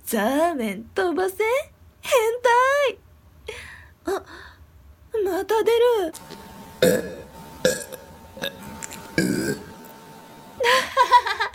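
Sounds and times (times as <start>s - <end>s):
speech: 0.1s - 4.5s, 5.2s - 7.2s
woman burping: 6.8s - 9.7s
laughter: 10.6s - 11.5s.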